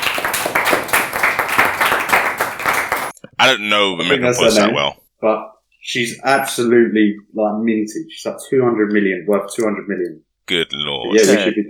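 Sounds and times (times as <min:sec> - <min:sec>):
crowd clapping: 0:00.0 - 0:03.2
speech: 0:03.4 - 0:11.6.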